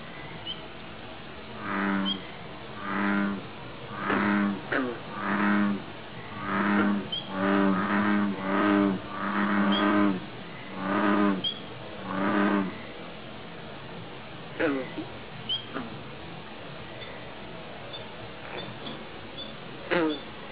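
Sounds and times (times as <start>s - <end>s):
bullfrog calling: 1.6s - 12.9s, 14.6s - 16.0s, 17.9s - 20.3s.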